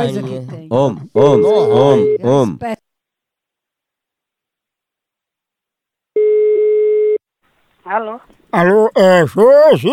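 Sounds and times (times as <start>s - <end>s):
speech: 0.0s - 2.8s, 7.9s - 9.9s
telephone ringback tone of an outgoing call: 1.4s - 2.2s, 6.2s - 7.2s.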